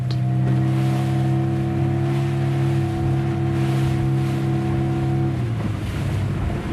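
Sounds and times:
fishing boat engine droning with a low harmonic hum out at sea: 0.0s - 6.7s
sea wash: 0.0s - 6.7s
gusty wind at sea: 2.0s - 6.7s.

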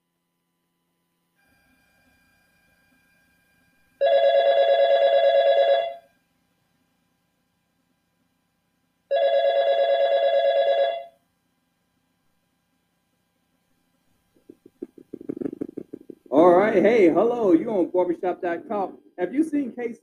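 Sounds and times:
telephone ringing: 4.0s - 6.1s, 9.1s - 11.2s
low sound: 14.4s - 19.3s
speech: 16.8s - 20.0s.

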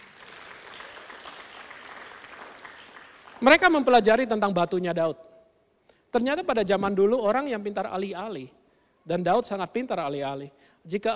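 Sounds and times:
audience applause: 0.0s - 3.7s
speech: 3.4s - 5.3s, 6.1s - 11.1s.

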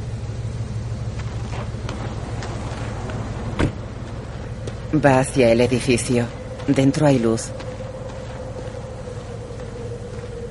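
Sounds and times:
steady low car engine rumble: 0.0s - 10.5s
car door thud as someone gets out of the car: 3.6s - 3.8s
speech: 4.9s - 7.6s.

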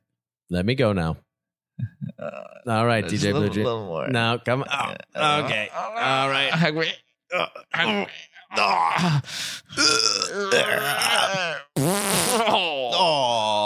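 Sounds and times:
speech: 0.5s - 13.6s
fart noises made with the mouth: 11.2s - 12.6s.

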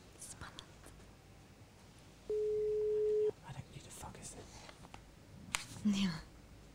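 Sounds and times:
telephone ringback tone on an outgoing call: 2.3s - 3.3s
speech: 5.8s - 6.2s.

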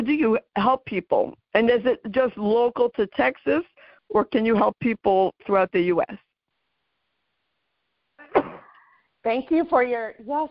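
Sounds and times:
speech: 0.2s - 6.3s, 9.2s - 10.4s
person sneezing: 8.2s - 8.9s.

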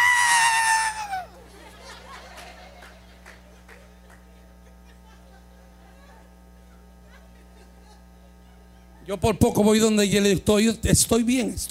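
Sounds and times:
person imitating a high-pitched scream: 0.0s - 1.3s
laughter: 0.0s - 9.3s
speech: 9.1s - 11.6s.

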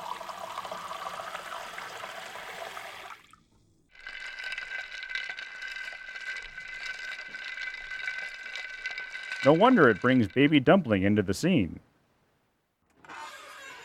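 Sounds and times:
lemonade pouring and sloshing in a pitcher: 0.0s - 10.6s
stirring and clinking in a lemonade pitcher: 3.9s - 10.9s
ice rattling in a lemonade pitcher: 4.0s - 10.9s
speech: 9.4s - 11.9s.

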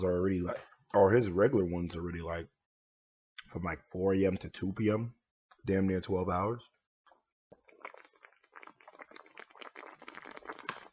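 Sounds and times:
speech: 0.0s - 2.6s, 3.5s - 6.8s
person drinking water with wet gulping and slurping: 7.5s - 10.9s.

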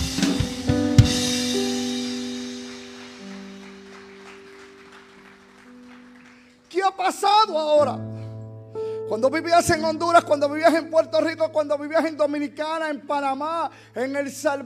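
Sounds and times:
sustained keyboard chords: 0.0s - 6.8s, 7.4s - 14.6s
audience applause: 2.5s - 6.8s
speech: 7.0s - 8.2s, 9.1s - 14.6s.

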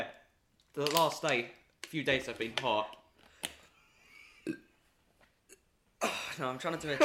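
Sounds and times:
speech: 0.8s - 3.0s, 6.0s - 7.0s
soft burps: 4.4s - 4.8s.

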